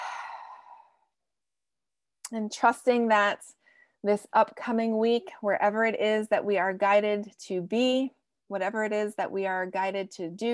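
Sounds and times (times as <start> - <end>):
long breathy exhale: 0.0 - 1.0
speech: 2.3 - 10.5.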